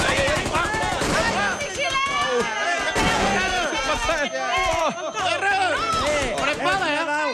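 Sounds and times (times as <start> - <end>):
gunfire bursts: 0.0 - 5.0, 5.8 - 7.0
frantic overlapping voices shouting: 0.0 - 7.3
laughter: 0.0 - 7.3.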